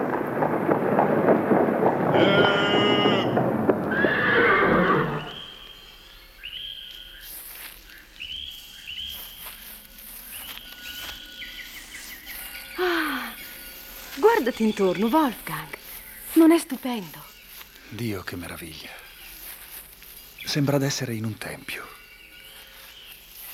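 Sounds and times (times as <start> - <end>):
horse hooves clopping in a forest: 0.0 - 23.5
insects chirping in a forest: 1.5 - 23.5
horse neighing in a forest: 2.1 - 5.4
speech: 14.6 - 15.8, 16.4 - 17.3, 17.9 - 19.0, 20.5 - 22.0.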